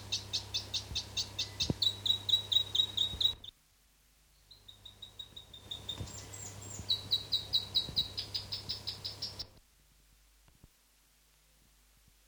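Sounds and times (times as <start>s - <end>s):
South Island robin song: 0.0s - 3.6s, 4.2s - 9.6s.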